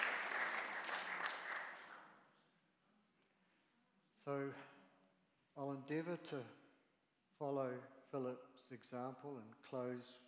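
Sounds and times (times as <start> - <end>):
church audience clapping in appreciation: 0.0 - 2.2
speech: 4.2 - 4.8, 5.6 - 6.6, 7.4 - 10.2.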